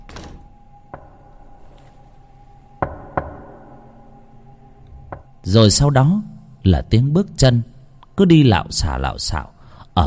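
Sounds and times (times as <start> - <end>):
faint hum: 0.0 - 10.0
knocks on a door: 2.8 - 3.4
speech: 5.4 - 10.0.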